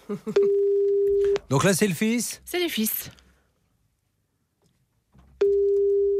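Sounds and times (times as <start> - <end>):
speech: 0.1 - 0.7, 1.5 - 3.2
steady loud telephone line tone: 0.4 - 1.4, 5.4 - 6.1.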